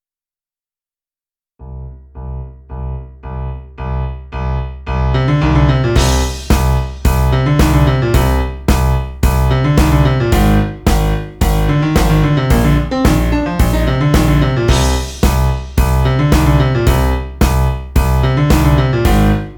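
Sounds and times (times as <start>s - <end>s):
rock piano playing: 1.6s - 19.5s
drum kit playing: 6.0s - 19.5s.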